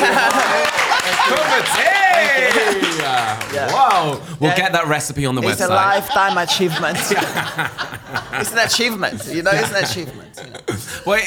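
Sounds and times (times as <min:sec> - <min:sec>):
clapping: 0:00.0 - 0:04.4
people laughing: 0:00.0 - 0:04.8, 0:05.4 - 0:11.2
people talking loudly: 0:00.0 - 0:11.2
speech: 0:03.4 - 0:11.2.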